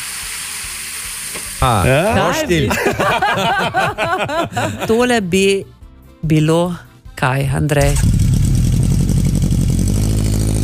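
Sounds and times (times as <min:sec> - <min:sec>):
speech: 0:01.3 - 0:08.2
laughter: 0:01.6 - 0:05.2
motorcycle engine running: 0:07.8 - 0:10.6.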